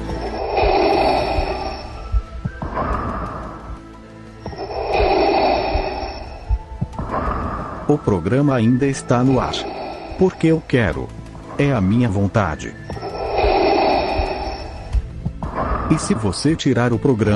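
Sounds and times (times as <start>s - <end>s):
heavy villain breathing: 0.1s - 8.2s, 9.1s - 11.7s, 12.9s - 16.3s
speech: 8.3s - 12.9s, 15.9s - 17.3s.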